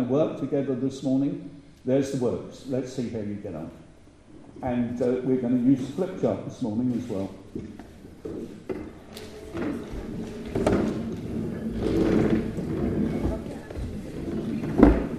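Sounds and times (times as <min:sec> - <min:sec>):
speech: 0:00.1 - 0:03.8, 0:04.6 - 0:07.8
chair being turned around, scraping and creaking: 0:06.9 - 0:15.1.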